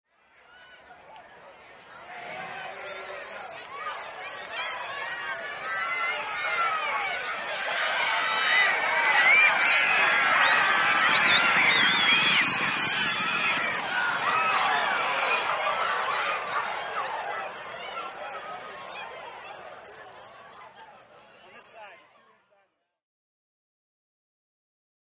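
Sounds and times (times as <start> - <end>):
horse race: 0.2 - 22.7.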